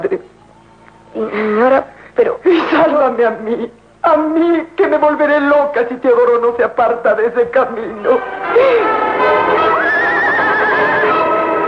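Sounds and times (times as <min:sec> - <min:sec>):
speech: 0:01.2 - 0:09.6
pony neighing impatiently in a stable: 0:09.6 - 0:11.4.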